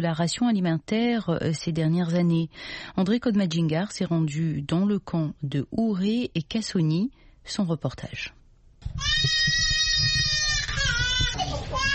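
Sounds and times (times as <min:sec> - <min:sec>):
speech: 0:00.0 - 0:09.7
malnourished child crying at a nutrition centre: 0:09.0 - 0:11.9.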